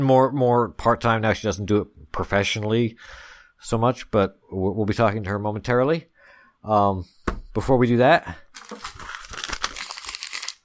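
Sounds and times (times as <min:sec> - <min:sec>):
speech: 0:00.0 - 0:08.9
paper crinkling: 0:08.5 - 0:10.6.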